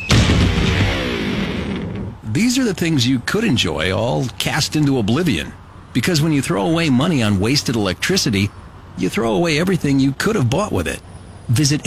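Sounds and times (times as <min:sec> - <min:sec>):
electric guitar hurled off a 20-story building crashing to the ground: 0:00.0 - 0:02.2
speech: 0:02.4 - 0:11.8.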